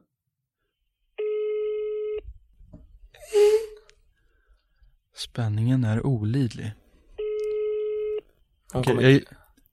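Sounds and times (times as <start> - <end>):
electronic ringback tones on a phone line: 1.2 - 2.2, 7.2 - 8.2
speech: 5.4 - 6.8, 8.7 - 9.4.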